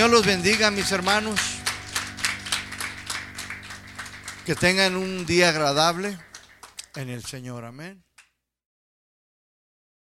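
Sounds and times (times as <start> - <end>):
speech: 0.0 - 1.6, 4.5 - 6.3, 6.9 - 8.1
audience clapping in a steady even rhythm: 0.0 - 7.6.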